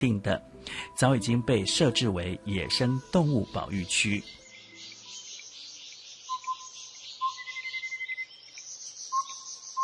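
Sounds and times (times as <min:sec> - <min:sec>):
speech: 0:00.0 - 0:04.4
high buzzing chorus of insects: 0:02.7 - 0:09.8
whistled bird notes in a botanical garden: 0:04.2 - 0:09.8.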